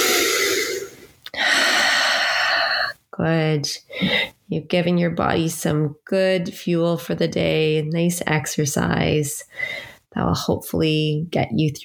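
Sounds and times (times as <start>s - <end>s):
slow breathing during a relaxing exercise cool-down: 0.0s - 3.0s, 9.5s - 10.0s
speech: 3.2s - 11.8s.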